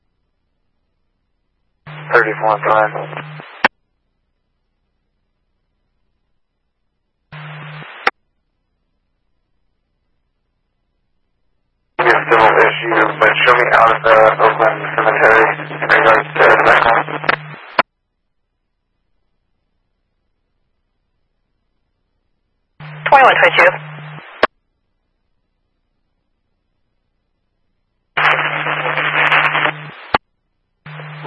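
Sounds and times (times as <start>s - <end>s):
low steady hum: 0.0s - 31.2s
crackling fire dispatch radio static: 1.9s - 3.7s, 7.3s - 8.1s, 12.0s - 17.8s, 22.8s - 24.5s, 28.2s - 30.2s, 30.9s - 31.2s
speech: 2.2s - 3.4s.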